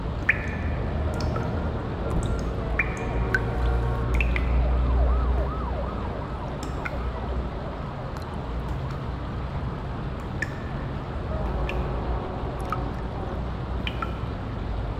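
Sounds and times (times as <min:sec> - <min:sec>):
sewer ambience: 0:00.0 - 0:14.9.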